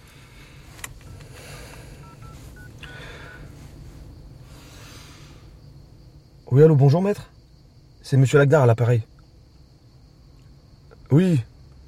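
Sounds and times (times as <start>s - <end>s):
steady hum: 0.0s - 11.8s
telephone keypad beeps as a number is dialled: 1.0s - 1.3s, 2.0s - 2.7s
speech: 6.5s - 7.3s, 8.1s - 9.1s, 11.1s - 11.5s.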